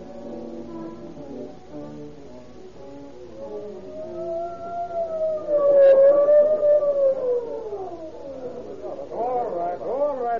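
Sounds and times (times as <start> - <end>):
ambulance siren wailing: 3.9 - 9.2.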